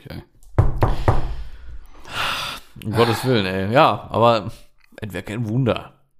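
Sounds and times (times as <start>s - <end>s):
speech: 0.1s - 0.3s, 2.8s - 6.0s
knocking on a door: 0.5s - 1.5s
soft breathy exhale: 1.0s - 3.3s.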